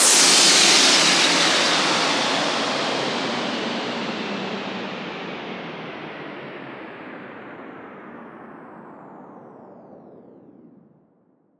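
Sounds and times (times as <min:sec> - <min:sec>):
downlifter sound effect: 0:00.0 - 0:06.3.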